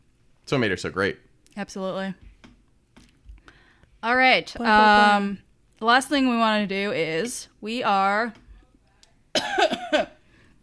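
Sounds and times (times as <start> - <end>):
speech: 0.5 - 2.3, 4.0 - 8.4
faint breathy trail: 3.3 - 4.0, 10.2 - 10.6
person coughing harshly: 9.4 - 10.2.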